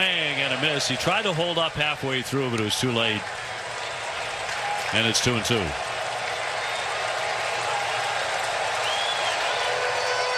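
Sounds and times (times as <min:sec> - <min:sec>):
large baseball stadium crowd cheering and applauding in Atlanta: 0:00.0 - 0:10.3
speech: 0:00.6 - 0:03.5, 0:04.9 - 0:05.9
faint whistles from stadium crowd: 0:08.8 - 0:10.3.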